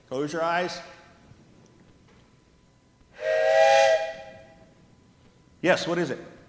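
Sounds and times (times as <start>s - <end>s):
speech: 0.1s - 1.0s, 5.6s - 6.3s
breathy blast from a train whistle: 3.2s - 4.6s.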